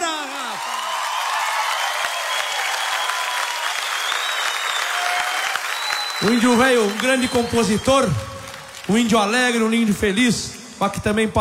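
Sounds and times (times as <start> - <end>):
crowd applauding: 0.0 - 11.3
faint cheers or whistles from crowd: 0.3 - 8.7
speech: 6.2 - 8.3, 8.9 - 11.3.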